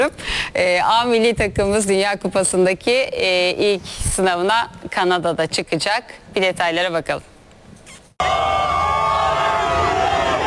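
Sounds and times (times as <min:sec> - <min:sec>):
speech: 0:00.0 - 0:07.3
football fans cheering and shouting as a national team arrives at its hotel: 0:08.2 - 0:10.4.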